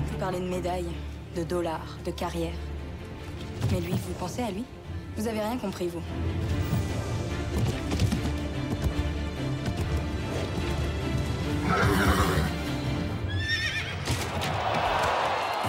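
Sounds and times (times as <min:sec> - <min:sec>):
speech: 0:00.2 - 0:02.7, 0:03.6 - 0:06.8, 0:11.7 - 0:12.2
horse hooves: 0:06.4 - 0:15.6
horse whinnying: 0:11.5 - 0:14.2.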